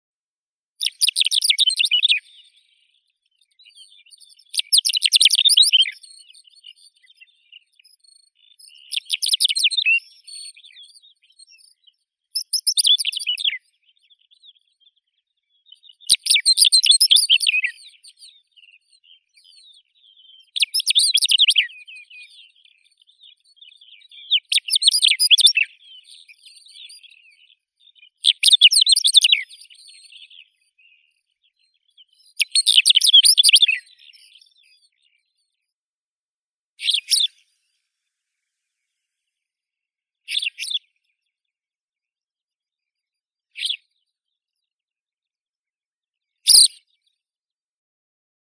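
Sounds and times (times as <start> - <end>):
small lark Calandrella brachydactyla: 0.8 - 35.7, 36.8 - 37.7, 40.3 - 41.4, 43.6 - 44.6, 46.4 - 47.1.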